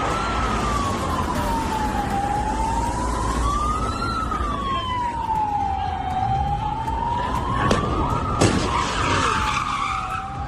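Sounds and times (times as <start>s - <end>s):
roaring car engines in a car chase: 0.0s - 10.4s
wailing siren in a car chase: 0.0s - 10.4s
sharp crashing impacts in a car chase: 8.4s - 9.3s.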